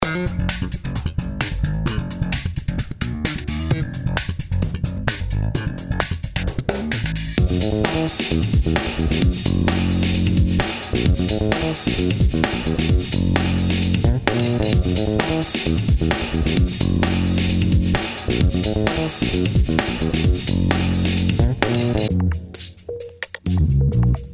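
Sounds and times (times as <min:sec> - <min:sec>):
solo bass: 0:00.0 - 0:22.4, 0:23.5 - 0:24.3.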